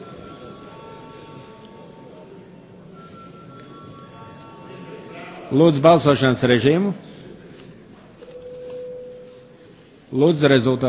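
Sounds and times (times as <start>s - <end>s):
parliament chamber electric bell ringing before vote: 0.0s - 2.3s, 2.9s - 5.5s
faint murmur of the parliament hall: 0.0s - 10.8s
speech: 5.5s - 7.1s, 10.2s - 10.8s.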